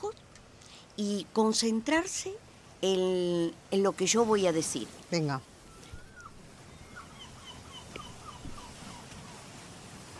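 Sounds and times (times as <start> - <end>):
steady hissing wash of noise: 0.0 - 10.1
speech: 1.0 - 5.5
seagull squawking: 5.7 - 9.4.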